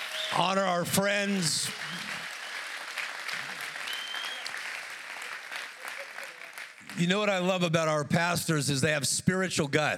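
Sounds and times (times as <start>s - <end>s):
crowd applauding at a church event: 0.0s - 7.5s
speech: 0.3s - 2.2s, 7.0s - 9.9s.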